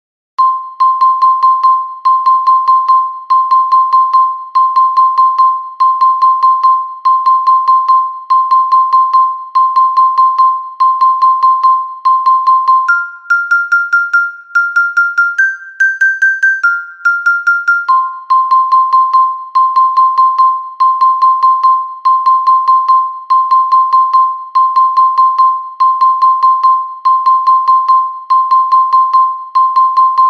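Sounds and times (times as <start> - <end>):
soprano metallophone: 0.4 - 30.2.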